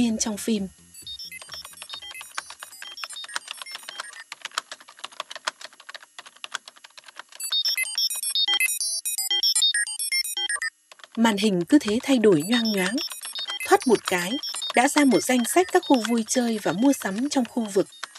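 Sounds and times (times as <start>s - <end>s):
speech: 0.0s - 0.8s, 11.2s - 13.1s, 13.8s - 18.0s
electronic beeps and chirping tones: 0.8s - 4.2s, 7.4s - 10.7s, 11.8s - 18.1s
fast ten-finger typing on a computer keyboard in a computer lab: 1.1s - 8.7s, 9.3s - 18.1s.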